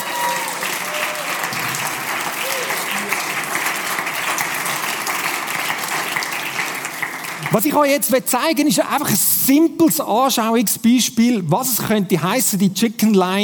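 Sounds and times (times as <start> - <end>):
faint crowd murmurs: 0.0 - 4.0
applause from a large audience: 0.0 - 8.0
speech: 7.5 - 13.4.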